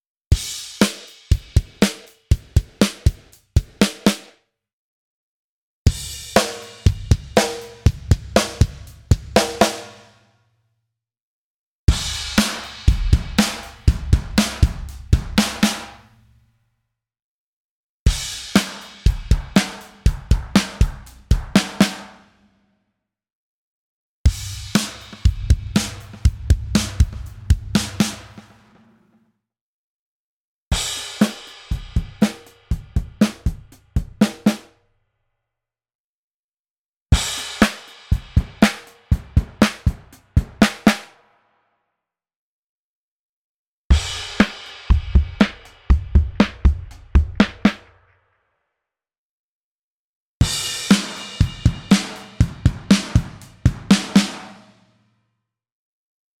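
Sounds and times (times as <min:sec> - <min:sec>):
drum kit: 0:00.3 - 0:04.3, 0:05.9 - 0:10.2, 0:11.9 - 0:16.3, 0:18.1 - 0:22.4, 0:24.3 - 0:29.1, 0:30.7 - 0:34.7, 0:37.1 - 0:41.1, 0:43.9 - 0:48.0, 0:50.4 - 0:54.8.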